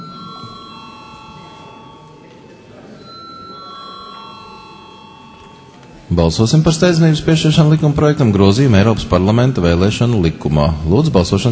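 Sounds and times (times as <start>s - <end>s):
bell rung in the Latvian parliament to call deputies to a vote: 0.0s - 8.3s
speech: 6.1s - 11.5s.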